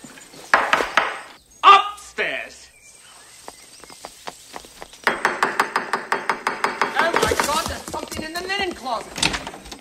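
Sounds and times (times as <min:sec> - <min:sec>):
firm knocks on a wooden surface: 0:00.5 - 0:01.3, 0:04.7 - 0:09.7
speech: 0:08.9 - 0:09.3.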